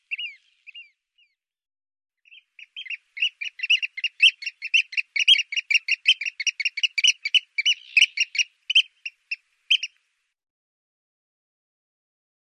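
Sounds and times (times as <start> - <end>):
Eurasian oystercatcher piping calls and shrill peeps: 0.0 - 1.4, 2.3 - 10.0.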